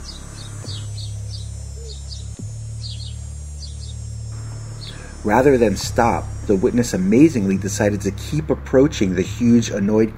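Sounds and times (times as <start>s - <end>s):
high-pitched bird-like chirping: 0.0s - 4.0s
steady low hum: 0.0s - 10.1s
speech: 5.2s - 10.1s.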